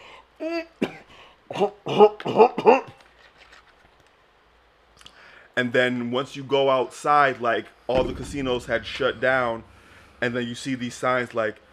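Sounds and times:
person stifled coughing behind closed lips: 0.4s - 3.0s
speech: 1.5s - 3.0s, 5.6s - 11.6s.

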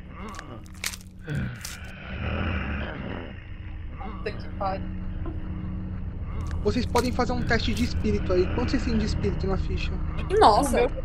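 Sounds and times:
low rumbling guttural growl: 0.0s - 11.0s
wet chewing and crunching: 0.2s - 1.9s, 6.4s - 8.0s
speech: 4.2s - 5.5s, 6.6s - 11.0s.

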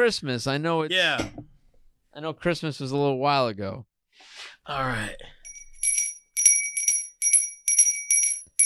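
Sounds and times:
speech: 0.0s - 1.5s, 2.2s - 5.4s
bright bells ringing in rhythmic bursts: 5.5s - 8.6s.

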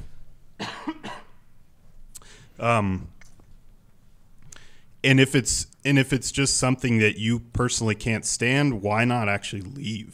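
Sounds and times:
person coughing with a voiced hacking cough: 0.6s - 1.4s
speech: 2.6s - 3.2s, 5.0s - 10.1s.

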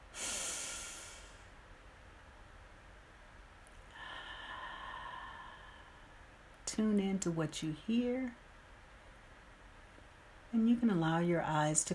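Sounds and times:
quieter steady breath: 0.0s - 1.6s, 3.8s - 6.5s
speech: 6.8s - 8.4s, 10.5s - 11.9s.

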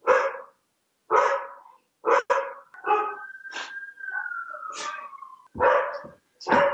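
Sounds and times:
dog barking excitedly: 0.0s - 3.2s, 5.6s - 6.7s
dog whining: 2.8s - 5.5s.

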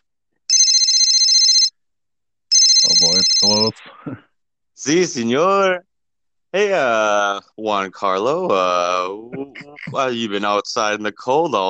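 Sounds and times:
telephone ringing on an outgoing call: 0.5s - 1.7s, 2.5s - 3.7s
speech: 2.9s - 5.9s, 6.5s - 11.6s
laughter: 8.5s - 10.2s.

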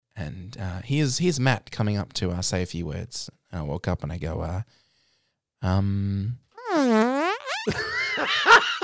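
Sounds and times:
speech: 0.2s - 4.8s, 5.6s - 6.4s, 7.6s - 8.8s
fart sound effect: 6.6s - 7.8s
laughter: 7.6s - 8.8s.

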